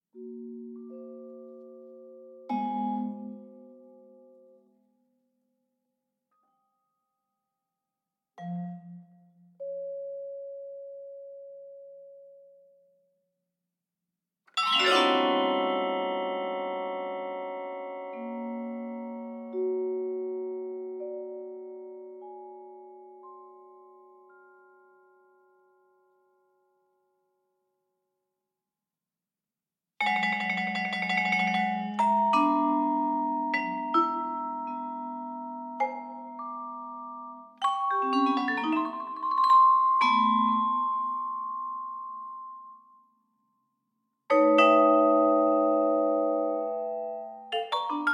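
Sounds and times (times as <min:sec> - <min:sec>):
vibraphone solo: 0:00.2 - 0:04.6, 0:08.4 - 0:12.8, 0:14.6 - 0:25.8, 0:30.0 - 0:43.0, 0:44.3 - 0:48.1.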